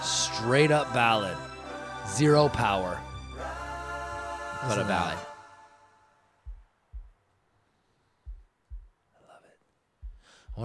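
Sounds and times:
speech: 0.4 - 3.1, 4.6 - 5.3
heartbeat sound effect thumping in double beats: 6.4 - 7.3, 8.2 - 9.0, 10.0 - 10.6
fading tonal hum: 6.5 - 7.2.

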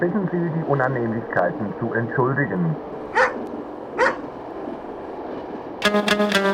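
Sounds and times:
speech: 0.0 - 3.2, 5.9 - 6.4
dog barking: 3.1 - 4.3.

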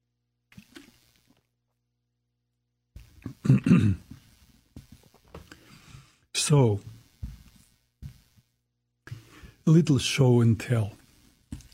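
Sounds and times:
person sipping water: 0.5 - 1.4
speech: 3.5 - 4.0, 6.5 - 6.9, 9.7 - 11.0.

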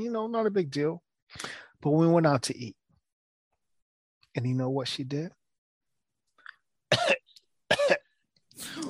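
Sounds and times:
speech: 0.0 - 2.8, 4.4 - 5.4
person fake coughing: 6.9 - 8.8.

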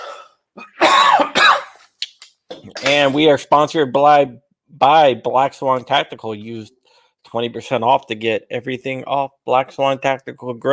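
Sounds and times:
harsh raspy coughing: 0.0 - 1.9, 2.6 - 3.2
speech: 2.9 - 10.7.

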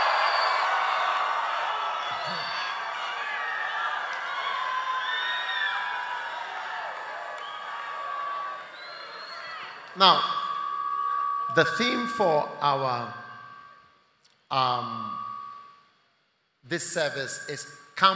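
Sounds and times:
large church crowd shouting whooping and cheering: 0.0 - 13.8
speech: 10.0 - 10.3, 11.6 - 13.2, 14.5 - 15.0, 16.7 - 18.1.

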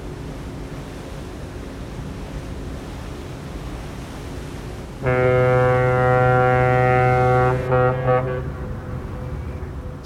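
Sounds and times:
constant rumble: 0.0 - 10.0
ferry horn blasts on open water: 5.0 - 10.0.

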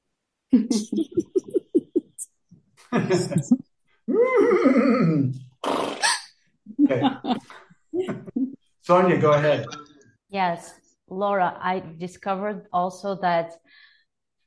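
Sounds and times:
speech: 0.5 - 1.3, 3.0 - 3.7, 8.9 - 9.8, 10.4 - 13.8
choppy vocal sounds: 0.6 - 2.3, 3.0 - 6.2
laughter: 0.7 - 2.1, 2.8 - 3.6, 6.8 - 8.2
person imitating a horse whinny with a snort: 4.1 - 6.3.

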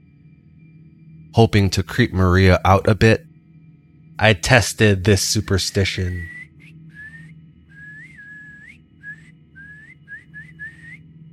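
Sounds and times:
speech: 1.4 - 3.3, 4.2 - 6.4
person whistling a wavering tune: 6.2 - 11.0.

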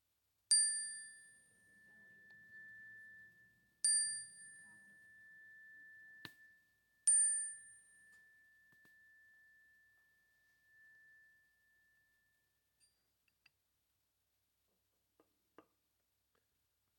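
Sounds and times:
bright metallic chime struck: 0.5 - 9.8.

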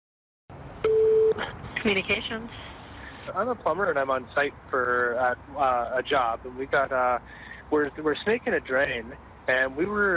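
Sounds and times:
telephone dialing tone: 0.8 - 1.5
speech: 1.4 - 10.1.

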